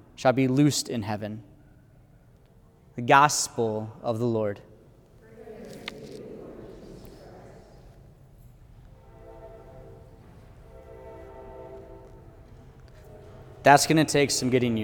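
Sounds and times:
speech: 0.2s - 1.5s, 3.0s - 4.7s, 13.6s - 14.8s
passing train rumbling: 8.2s - 14.8s
sustained horn-like tone of a passing train: 9.0s - 14.0s.

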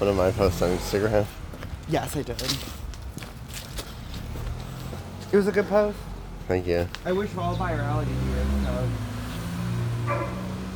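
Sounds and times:
speech: 0.0s - 2.8s, 5.3s - 9.1s, 10.1s - 10.4s
big Akita dog barking beyond a fence: 10.0s - 10.7s
dog yelping: 10.1s - 10.6s.

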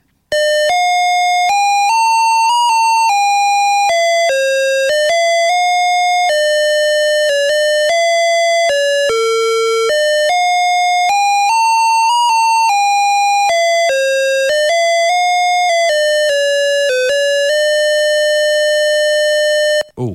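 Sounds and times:
shrill beeping square-wave game melody from an early PC internal speaker: 0.3s - 19.9s.

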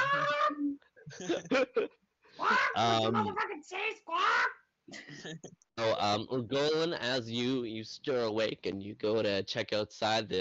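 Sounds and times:
person imitating a raven's harsh squawking: 0.0s - 1.5s, 2.4s - 4.6s
laughter: 1.1s - 3.4s
speech: 1.2s - 10.3s.

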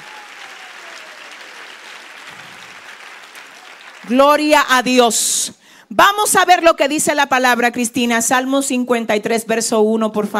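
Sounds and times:
large church audience applauding during a sermon: 0.0s - 4.8s
speech: 4.0s - 10.3s.

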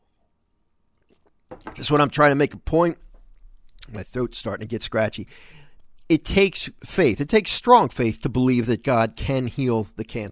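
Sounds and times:
person sipping water: 1.0s - 1.5s
speech: 1.2s - 3.0s, 3.9s - 10.2s.

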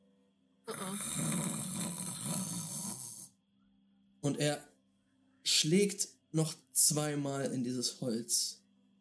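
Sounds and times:
voice imitating a faint rattling breath from a frozen body: 0.7s - 3.3s
speech: 4.3s - 4.7s, 5.6s - 8.6s.

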